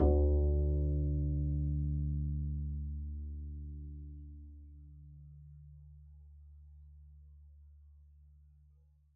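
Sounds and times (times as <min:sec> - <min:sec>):
double bass pizzicato D2 note: 0:00.0 - 0:06.4.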